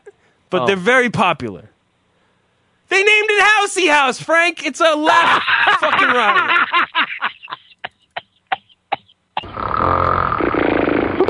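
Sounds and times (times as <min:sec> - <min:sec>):
speech: 0:00.5 - 0:01.7, 0:02.9 - 0:06.6
laughter: 0:05.1 - 0:08.5
cartoonish snore sound effect: 0:09.4 - 0:11.2.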